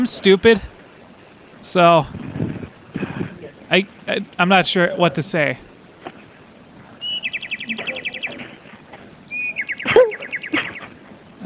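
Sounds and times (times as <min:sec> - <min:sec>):
speech: 0:00.0 - 0:00.7, 0:01.6 - 0:02.2, 0:03.7 - 0:05.7
rapid high-pitched bird chirping trills: 0:07.0 - 0:11.0.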